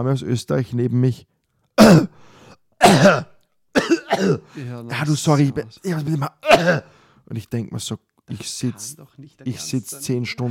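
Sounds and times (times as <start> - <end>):
speech: 0.0 - 3.3, 4.1 - 10.4
person imitating a cough: 1.8 - 2.2, 2.8 - 4.5, 6.4 - 6.9.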